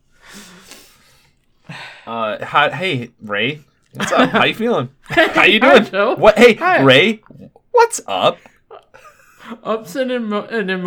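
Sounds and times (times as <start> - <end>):
wet nose sniffles after crying: 0.2 - 1.4
speech: 2.1 - 8.5, 9.4 - 10.8
laughter: 4.0 - 7.2, 8.7 - 9.9.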